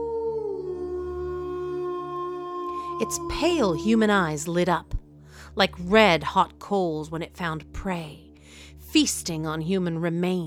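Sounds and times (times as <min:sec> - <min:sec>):
eerie monster-like howl: 0:00.0 - 0:04.5
speech: 0:03.0 - 0:05.0, 0:05.6 - 0:10.4.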